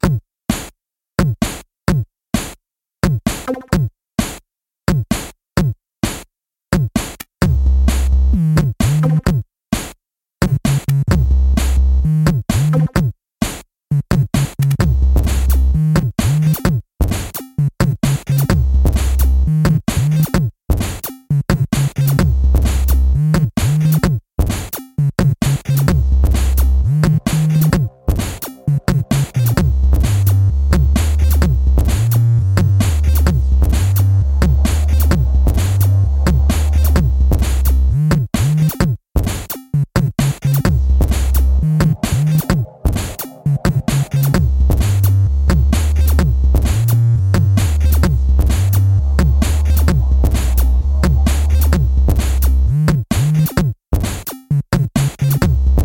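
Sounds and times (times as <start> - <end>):
chiptune drum samples: 0.0 - 6.2, 6.8 - 55.8.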